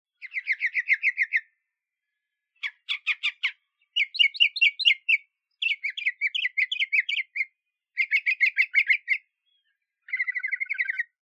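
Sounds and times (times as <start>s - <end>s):
northern mockingbird singing: 0.2s - 1.6s, 2.6s - 11.2s.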